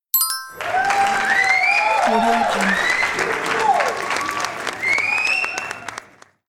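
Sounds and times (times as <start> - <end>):
correct answer bell: 0.1 - 1.3
cheering: 0.3 - 6.4.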